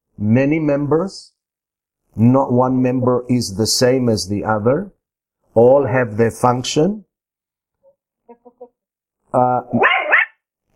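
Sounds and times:
speech: 0.2s - 1.4s, 2.1s - 5.0s, 5.6s - 7.1s, 9.3s - 9.9s
dog barking over a computer connection: 9.8s - 10.4s.

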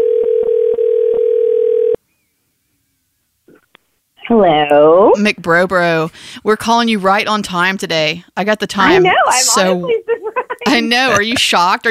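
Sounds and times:
telephone dial tone: 0.0s - 2.0s
speech: 4.4s - 11.8s.

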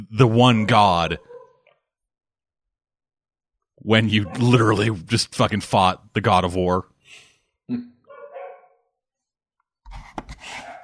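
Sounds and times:
speech: 0.1s - 1.3s, 3.8s - 7.9s
puppy whining bark: 1.2s - 1.6s, 8.1s - 8.8s.

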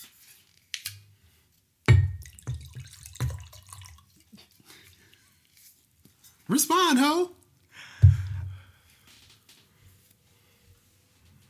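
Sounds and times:
wine poured into a glass: 2.2s - 5.3s
speech: 6.5s - 7.4s.

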